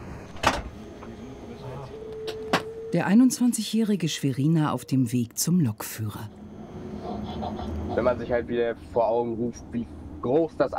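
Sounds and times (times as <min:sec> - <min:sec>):
low steady hum: 0:00.1 - 0:10.7
train cab door shutting with a clunk: 0:00.2 - 0:01.2
speech: 0:02.9 - 0:06.4, 0:08.0 - 0:10.7.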